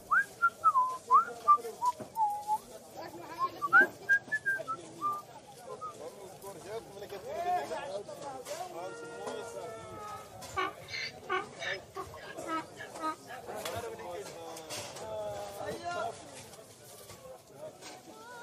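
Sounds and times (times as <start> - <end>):
crowd chatter and murmuring voices: 0.0 - 18.4
man whistling a casual tune to himself while walking: 0.1 - 1.6, 2.2 - 2.6, 3.6 - 5.2.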